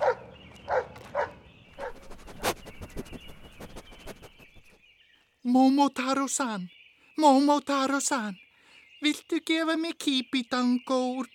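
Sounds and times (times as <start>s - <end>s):
dog barking and yelping: 0.0s - 2.0s
speech: 5.5s - 8.4s, 9.0s - 11.3s.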